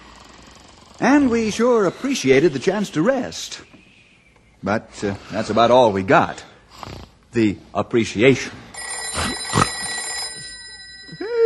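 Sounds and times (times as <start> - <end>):
speech: 1.0 - 3.8, 4.6 - 8.6
telephone bell ringing: 8.7 - 11.4.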